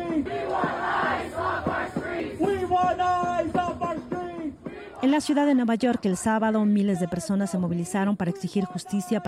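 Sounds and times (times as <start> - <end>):
crowd of supporters chanting at a Republican campaign rally in Clarksville Tennessee: 0.2 - 3.8, 4.5 - 5.2
speech: 5.1 - 9.2.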